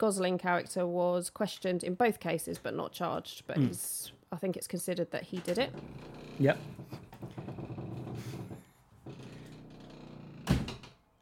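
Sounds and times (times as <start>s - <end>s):
speech: 0.0s - 6.9s
door creaking open: 5.4s - 11.0s.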